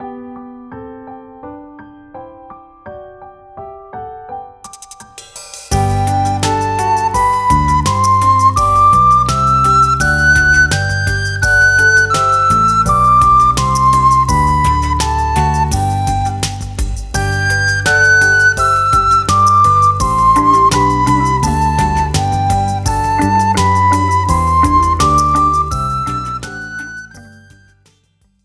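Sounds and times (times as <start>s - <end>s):
flute playing G major scale: 5.7s - 27.8s.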